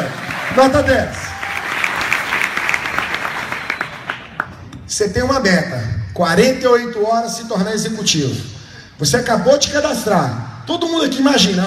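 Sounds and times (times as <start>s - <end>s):
audience applause: 0.0s - 4.6s
speech: 0.5s - 1.2s, 5.0s - 11.6s.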